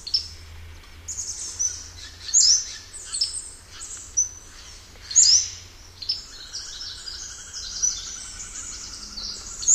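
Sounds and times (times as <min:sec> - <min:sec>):
Pacific-slope flycatcher calling: 0:01.1 - 0:09.7.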